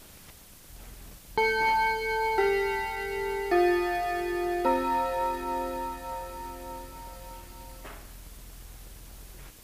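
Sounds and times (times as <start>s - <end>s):
clock's quarter-hour chime with four ringing bell tones: 1.4s - 7.9s.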